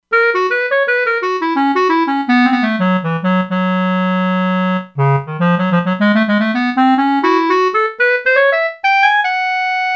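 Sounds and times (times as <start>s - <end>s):
synthesized clarinet note from a synthesizer factory preset: 0.1s - 9.9s.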